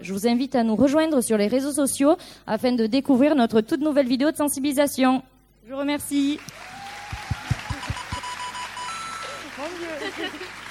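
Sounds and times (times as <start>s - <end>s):
speech: 0.0s - 6.6s
game-show buzzers with electronic tones: 6.4s - 10.7s
laughter: 7.4s - 8.5s, 9.2s - 10.7s
steady beeping tone: 7.7s - 9.4s.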